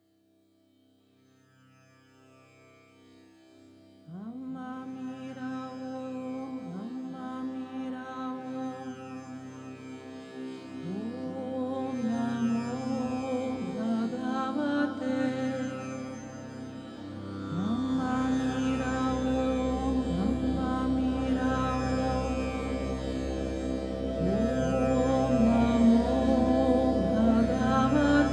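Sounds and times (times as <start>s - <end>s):
choir chanting om: 8.5s - 28.3s.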